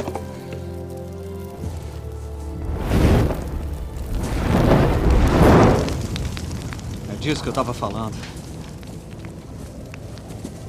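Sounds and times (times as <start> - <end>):
bonfire crackling: 0.0 - 10.6
low constant roar of bonfire flames: 0.7 - 10.6
speech: 7.3 - 8.4.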